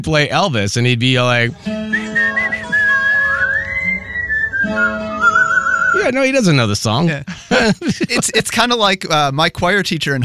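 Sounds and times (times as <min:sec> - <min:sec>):
speech: 0:00.0 - 0:02.0, 0:06.0 - 0:10.2
person whistling like a bird: 0:01.7 - 0:06.1
laughter: 0:01.9 - 0:03.4, 0:07.2 - 0:08.6.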